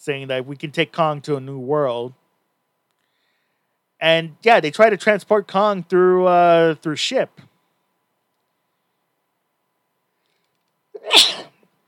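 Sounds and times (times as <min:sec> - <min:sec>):
speech: 0:00.0 - 0:02.2, 0:04.0 - 0:07.5
person sneezing: 0:11.0 - 0:11.6.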